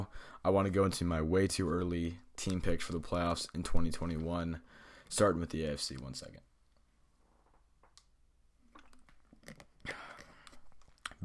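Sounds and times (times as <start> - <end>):
speech: 0.0 - 6.5
faint room hiss: 0.0 - 11.2
person sipping and gulping water: 8.6 - 11.2.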